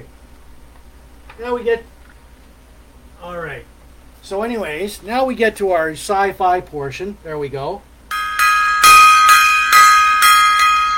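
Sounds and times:
speech: 0:01.4 - 0:02.0, 0:03.2 - 0:07.9
gong being struck: 0:08.1 - 0:10.9.

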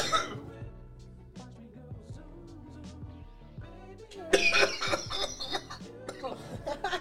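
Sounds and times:
person coughing after inhaling a dab hit: 0:00.0 - 0:00.4, 0:04.4 - 0:06.4
laughter: 0:04.4 - 0:07.0.

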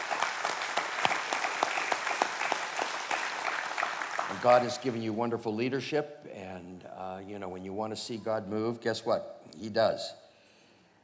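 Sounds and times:
audience applause: 0:00.0 - 0:05.0
speech: 0:04.3 - 0:10.2.

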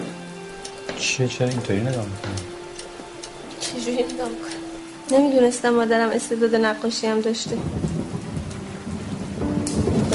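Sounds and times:
light fine drizzling rain: 0:00.0 - 0:10.1
speech: 0:01.0 - 0:02.5, 0:03.8 - 0:08.0.

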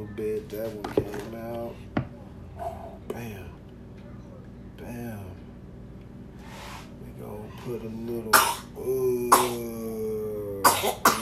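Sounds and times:
speech: 0:00.0 - 0:01.1, 0:07.6 - 0:09.0
steady hum: 0:00.0 - 0:11.2
person coughing: 0:08.3 - 0:09.9, 0:10.5 - 0:11.2.

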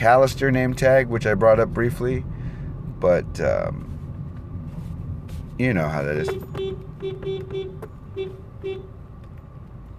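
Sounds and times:
speech: 0:00.0 - 0:02.4, 0:03.0 - 0:03.9, 0:05.6 - 0:07.3
steady low rumble of engine and road noise: 0:00.0 - 0:09.9
car horn beeping: 0:06.1 - 0:09.1.

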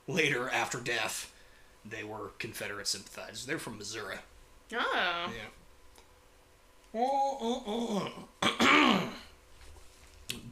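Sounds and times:
speech: 0:00.1 - 0:05.6, 0:06.9 - 0:09.2
person clearing throat after sipping bourbon: 0:07.6 - 0:09.3.

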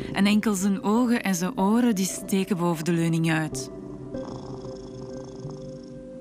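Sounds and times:
speech: 0:00.2 - 0:03.8
cat purring: 0:04.1 - 0:06.1.

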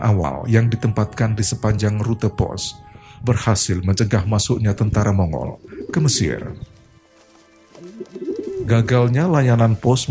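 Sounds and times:
speech: 0:00.0 - 0:06.8, 0:08.0 - 0:10.0
pigeons cooing: 0:05.4 - 0:06.8, 0:07.7 - 0:09.0.

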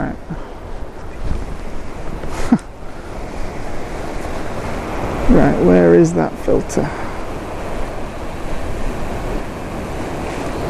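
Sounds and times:
strong wind at a coastal point in Scotland: 0:00.0 - 0:10.6
speech: 0:05.4 - 0:07.0.

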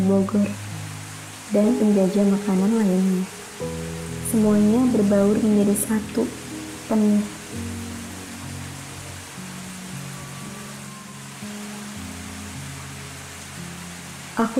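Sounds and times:
speech: 0:00.0 - 0:00.6, 0:01.5 - 0:07.8, 0:14.4 - 0:14.5
dense steady rain: 0:00.0 - 0:14.5.

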